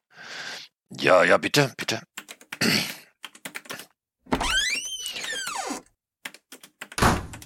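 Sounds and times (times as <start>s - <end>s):
speech: 1.1s - 2.9s
rapid keyboard-like clicking: 2.1s - 3.9s, 6.3s - 7.4s
door creaking: 4.3s - 5.9s, 7.0s - 7.4s
door slamming shut: 7.0s - 7.4s.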